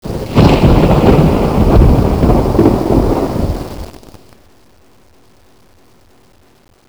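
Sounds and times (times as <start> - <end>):
clear thunder: 0.0 - 4.2.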